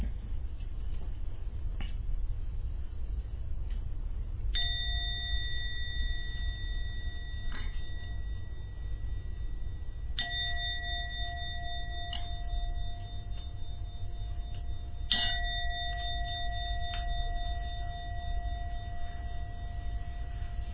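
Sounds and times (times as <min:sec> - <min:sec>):
low hum: 0:00.0 - 0:20.7
meditation gong ringing: 0:04.6 - 0:20.7.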